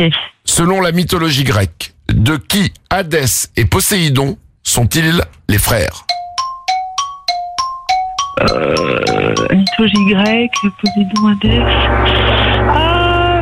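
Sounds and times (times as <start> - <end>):
speech: 0.0 - 6.2, 8.4 - 12.9
dense burst of jingle music: 6.0 - 13.4
bright metallic gong-like strikes signalling end of quiz answer time: 11.4 - 13.4.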